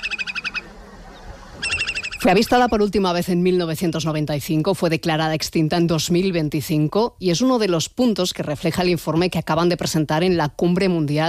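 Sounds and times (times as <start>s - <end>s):
slender-billed curlew high pulsed trill song: 0.0s - 2.8s
speech: 2.2s - 11.2s.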